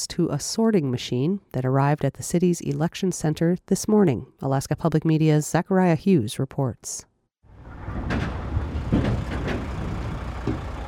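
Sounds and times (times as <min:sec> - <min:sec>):
speech: 0:00.0 - 0:07.1
moving trucks idling and rumbling: 0:07.5 - 0:10.8.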